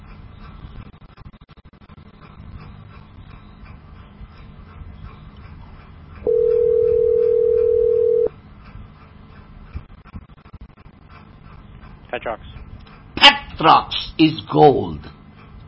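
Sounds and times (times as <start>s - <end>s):
loud steady telephone dial tone: 6.3s - 8.3s
speech: 12.2s - 12.4s, 13.6s - 15.1s.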